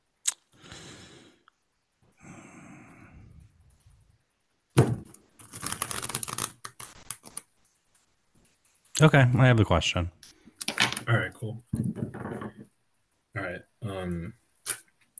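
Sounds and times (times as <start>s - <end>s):
deck of cards being shuffled: 5.4s - 7.5s
speech: 9.0s - 10.2s, 11.1s - 11.9s, 13.9s - 14.4s.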